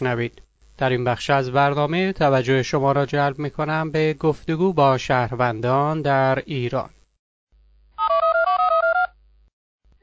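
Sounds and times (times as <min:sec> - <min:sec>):
speech: 0:00.0 - 0:07.0
electronic ringing on an outgoing telephone call: 0:08.0 - 0:09.2.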